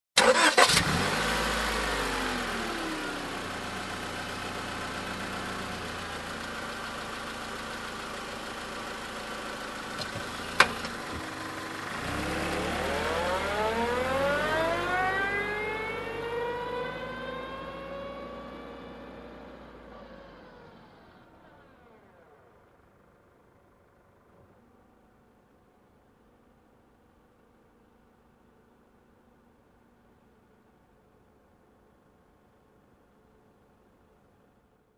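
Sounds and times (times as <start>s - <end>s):
car engine ignition and backing off: 0.2s - 25.3s.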